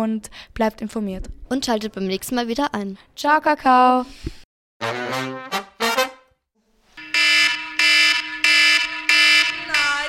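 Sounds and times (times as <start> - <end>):
speech: 0.0 - 5.4
harsh electronic alarm clock blaring: 7.0 - 10.0.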